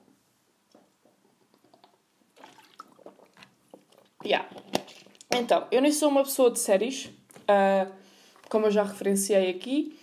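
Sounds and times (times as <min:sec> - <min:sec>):
person sipping water: 0:00.7 - 0:04.2
swallowing sounds: 0:00.7 - 0:04.2
speech: 0:04.2 - 0:04.8, 0:05.4 - 0:10.0.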